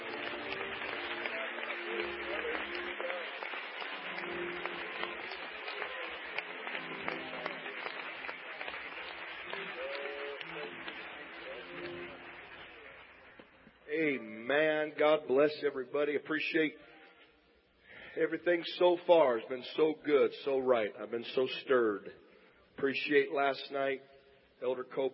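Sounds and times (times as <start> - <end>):
audience clapping enthusiastically in praise: 0.0 - 13.7
speech: 14.9 - 16.9, 18.2 - 22.2, 22.8 - 25.1.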